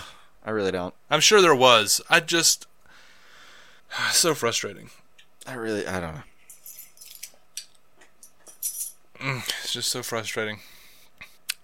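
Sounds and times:
speech: 0.4s - 2.7s, 3.9s - 6.3s, 9.2s - 10.7s
dog collar tags jingling: 6.5s - 9.0s.

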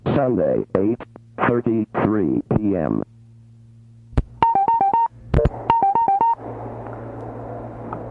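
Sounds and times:
speech: 0.2s - 3.1s
telephone keypad dialing tones: 4.4s - 6.4s.

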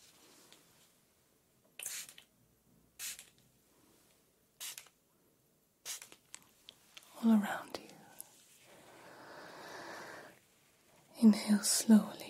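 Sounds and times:
mist spray bottle spritzing: 1.8s - 2.3s, 3.0s - 3.4s, 4.6s - 4.9s, 5.8s - 6.2s
speech: 7.2s - 7.8s, 11.2s - 12.2s.

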